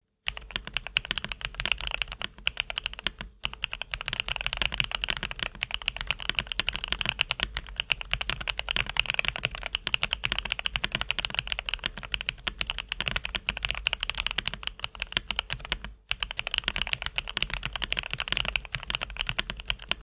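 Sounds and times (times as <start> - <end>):
mechanical keyboard with Akko V3 Creamy Yellow Pro switches typing: 0.3 - 20.0.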